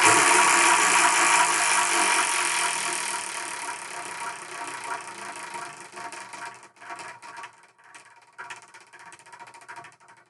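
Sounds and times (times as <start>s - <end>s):
spun prize wheel whirring and clicking to a stop: 0.0s - 7.0s.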